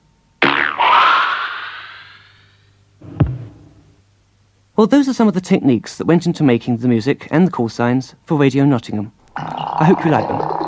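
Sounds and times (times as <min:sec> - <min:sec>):
thick elastic band plucked and twanging: 0:00.4 - 0:01.4
dull thump: 0:03.0 - 0:03.7
speech: 0:04.8 - 0:10.5.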